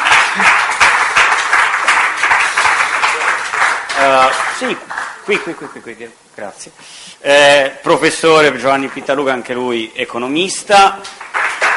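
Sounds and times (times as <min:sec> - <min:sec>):
voice rising over applause: 0:00.0 - 0:05.5
audience applause: 0:00.0 - 0:05.9, 0:11.0 - 0:11.7
speech: 0:04.0 - 0:11.2.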